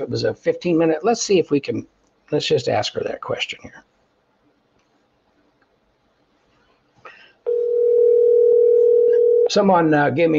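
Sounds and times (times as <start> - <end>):
speech: 0.0 - 3.9, 9.5 - 10.3
low-pitched telephone dial tone: 7.5 - 9.5.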